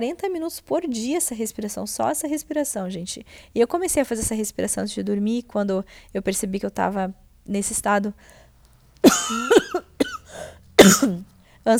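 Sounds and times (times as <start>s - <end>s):
speech: 0.0s - 8.4s, 9.0s - 9.9s, 10.8s - 11.7s
person coughing: 9.0s - 11.2s.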